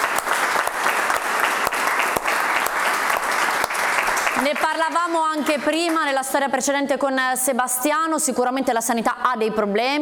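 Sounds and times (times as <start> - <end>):
steady applause from a group of people: 0.0 - 6.5
speech: 4.4 - 9.9.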